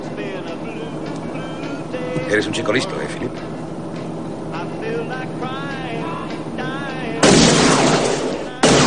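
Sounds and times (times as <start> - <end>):
speech: 2.3 - 3.5
gunshot fired into a car roof: 7.2 - 8.8.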